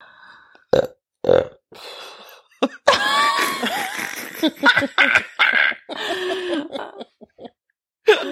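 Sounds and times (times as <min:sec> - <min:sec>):
long gravelly burp: 0:00.7 - 0:01.6
person chuckling: 0:02.6 - 0:08.3.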